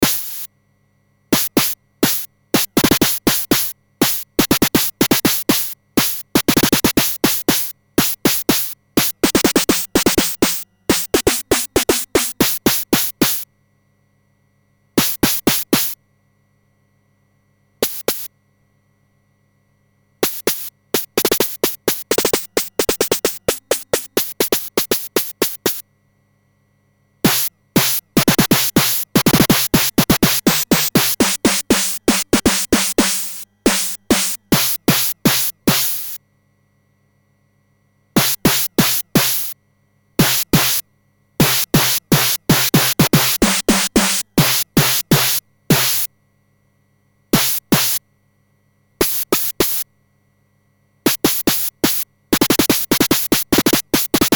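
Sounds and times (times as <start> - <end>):
SID chip synthesized snare drum: 0.0 - 0.5, 1.4 - 13.4, 15.0 - 16.0, 17.8 - 18.3, 20.2 - 25.8, 27.3 - 36.2, 38.2 - 39.6, 40.2 - 40.8, 41.4 - 46.1, 47.4 - 48.0, 49.0 - 49.8, 51.1 - 54.3.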